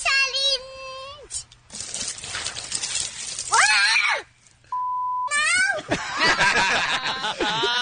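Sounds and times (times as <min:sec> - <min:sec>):
two-year-old girl shrieking and squealing as she gets hit with ice water: 0:03.5 - 0:04.3
two-year-old girl swearing: 0:03.5 - 0:04.3, 0:05.3 - 0:05.9
short steady censor beep over swearing: 0:04.7 - 0:05.4
laughter: 0:05.8 - 0:07.8.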